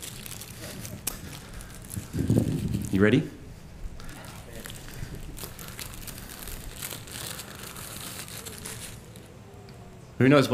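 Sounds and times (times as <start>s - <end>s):
paper bag crinkling and crumpling: 0.0s - 3.2s, 4.0s - 9.4s
speech: 3.0s - 3.4s, 10.2s - 10.5s.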